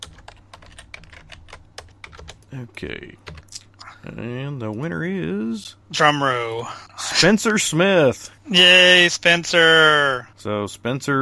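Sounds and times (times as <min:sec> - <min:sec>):
typing on a computer keyboard: 0:00.0 - 0:02.5, 0:03.2 - 0:03.5
low steady hum: 0:00.0 - 0:11.2
speech: 0:02.5 - 0:03.4, 0:04.0 - 0:11.2.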